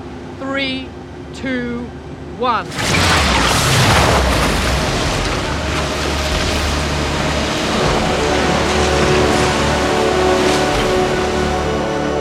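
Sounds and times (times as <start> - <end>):
speech: 0.6 - 3.5
sci-fi atomic vacuum device switching on near a ship, booming roar: 2.7 - 12.1.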